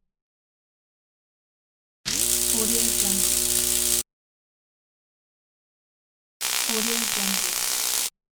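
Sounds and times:
electric arc: 2.1 - 4.1, 6.4 - 8.1.

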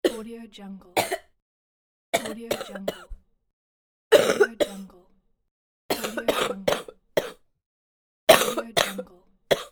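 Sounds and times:
woman coughing: 0.0 - 0.2, 1.0 - 1.3, 2.2 - 3.2, 4.1 - 4.9, 5.9 - 7.4, 8.3 - 9.7.

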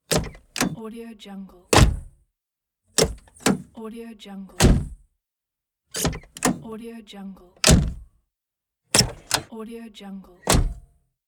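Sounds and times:
car door opening and closing: 0.0 - 0.8, 1.7 - 2.1, 3.0 - 3.7, 4.6 - 5.0, 6.0 - 6.6, 7.6 - 8.1, 9.0 - 9.5, 10.4 - 10.9.

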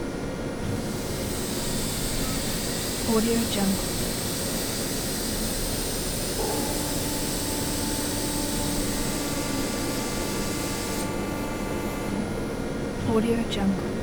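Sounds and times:
factory ambience: 0.0 - 14.0.

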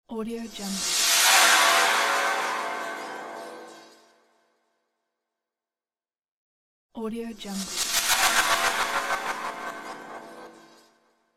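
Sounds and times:
reverse cymbal: 0.5 - 4.1, 7.6 - 10.6.

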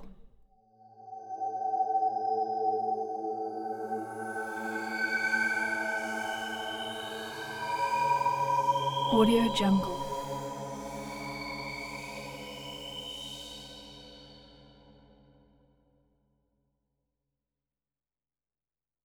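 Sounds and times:
mystic choir drone: 0.7 - 15.5.

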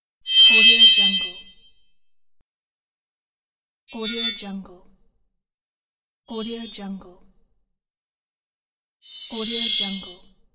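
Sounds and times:
shrill sound: 0.3 - 1.7.

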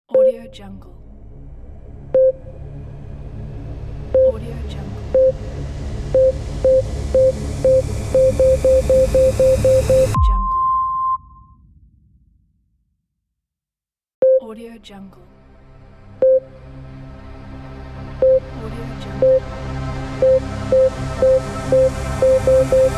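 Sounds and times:
ambient countdown beeps: 0.1 - 0.5, 2.2 - 2.4, 4.2 - 4.4, 5.2 - 5.4, 6.1 - 11.4, 14.2 - 14.4, 16.2 - 16.4, 18.2 - 18.5, 19.2 - 19.5, 20.2 - 22.9.

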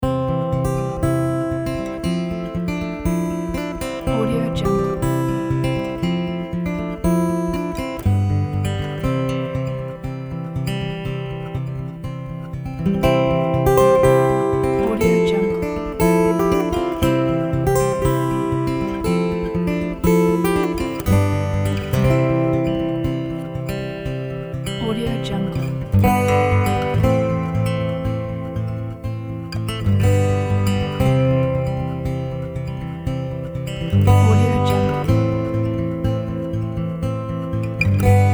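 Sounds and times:
indie folk acoustic guitar: 0.0 - 38.3.

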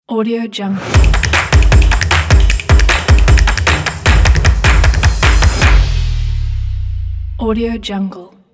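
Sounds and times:
drums logo: 0.9 - 7.4.

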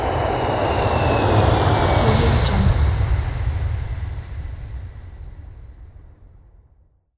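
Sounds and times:
airplane flying over: 0.1 - 4.0.

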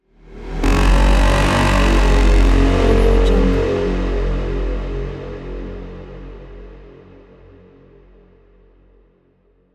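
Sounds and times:
cinematic mega horns: 0.6 - 6.1.

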